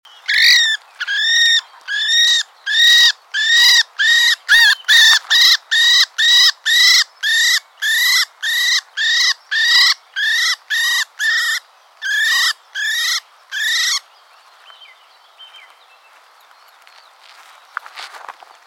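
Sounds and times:
common blackbird Turdus merula giving harsh harmonic calls: 0:00.2 - 0:14.1.

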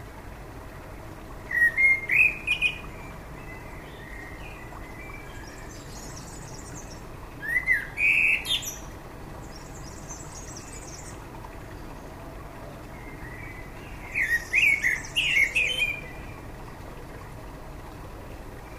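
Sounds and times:
common blackbird Turdus merula singing whistled notes with squeaky twitters: 0:01.5 - 0:08.9, 0:13.0 - 0:16.4.

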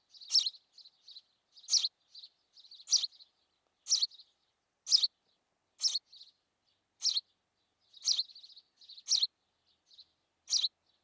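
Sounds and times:
house sparrow chirping and twittering: 0:00.1 - 0:04.3, 0:04.9 - 0:05.1, 0:05.8 - 0:06.3, 0:07.0 - 0:07.3, 0:07.9 - 0:09.3, 0:09.9 - 0:11.0.

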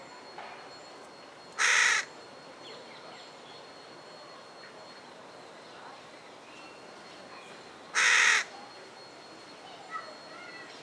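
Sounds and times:
Carrion crow Corvus corone cawing: 0:01.6 - 0:02.1, 0:08.0 - 0:08.5.

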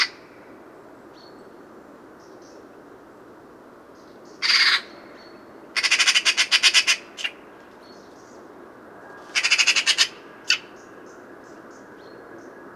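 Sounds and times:
Eurasian magpie Pica pica chattering: 0:04.4 - 0:04.9, 0:05.8 - 0:07.4, 0:09.4 - 0:10.6.

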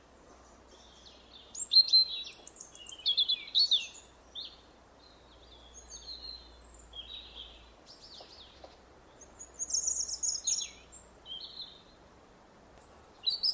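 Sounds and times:
European robin singing: 0:00.0 - 0:12.0, 0:12.8 - 0:13.5
steady background hiss: 0:00.0 - 0:13.5.

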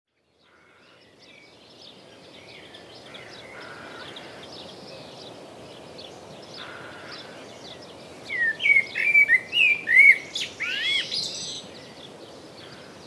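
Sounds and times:
Common blackbird giving quick looping whistled notes: 0:08.4 - 0:11.4.

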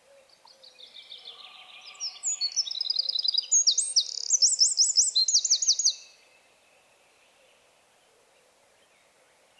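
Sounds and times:
Troglodytes troglodytes Eurasian wren singing: 0:00.3 - 0:06.2.

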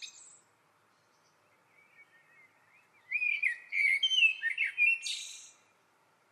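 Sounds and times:
Turdus merula Eurasian blackbird singing: 0:01.0 - 0:05.7.

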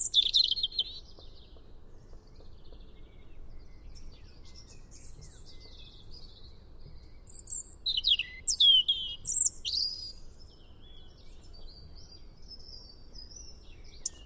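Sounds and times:
European robin singing: 0:00.0 - 0:14.2.

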